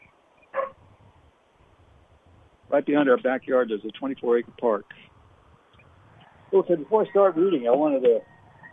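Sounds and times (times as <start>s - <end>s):
coyote yipping from a pack of coyotes: 0.0s - 0.8s, 5.7s - 8.7s
speech: 2.7s - 5.1s, 6.5s - 8.3s.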